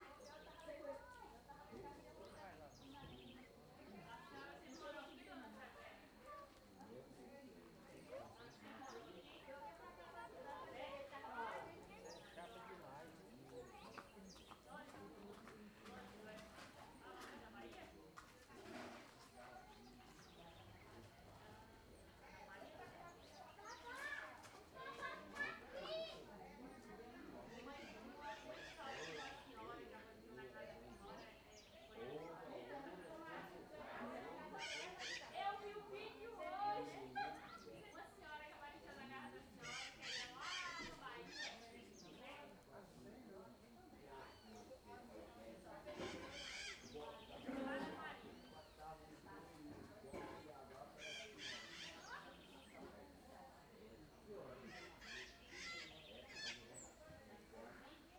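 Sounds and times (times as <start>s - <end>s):
murmur of voices in a neighbouring house: 0.0s - 58.1s
macaws calling: 27.8s - 29.6s, 34.5s - 35.4s, 39.6s - 42.1s, 45.9s - 47.4s, 51.0s - 52.6s, 54.6s - 57.0s.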